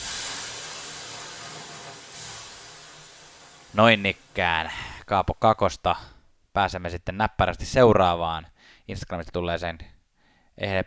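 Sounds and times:
water thrown on hot sauna stones hissing steam: 0.0 - 5.1
speech: 3.7 - 9.9, 10.6 - 10.8.

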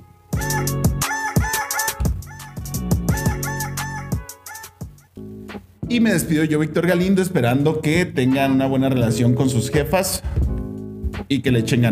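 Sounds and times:
voice imitating rooster crowing through heavy autotune: 0.4 - 5.0
speech: 5.9 - 10.4, 11.3 - 11.9.

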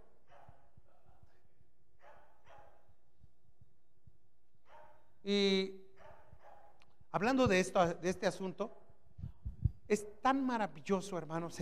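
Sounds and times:
dog barking: 0.0 - 1.3, 2.0 - 3.0, 4.6 - 5.1, 6.0 - 6.8
speech: 5.2 - 5.8, 7.1 - 8.8, 9.9 - 11.6.

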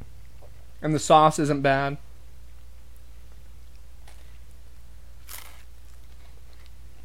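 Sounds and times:
speech: 0.8 - 2.0
biting into crunchy pizza crust: 5.2 - 7.0.

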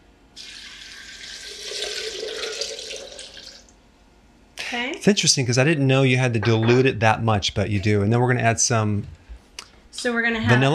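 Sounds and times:
water pouring into a container to be blended with soaked nuts: 0.4 - 3.7
speech: 4.7 - 9.2, 10.0 - 10.7.

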